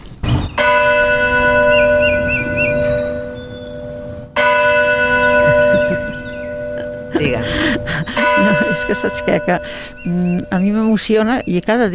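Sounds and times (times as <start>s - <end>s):
church bells ringing: 0.6s - 11.3s
laughter: 5.4s - 10.0s
speech: 8.9s - 11.9s.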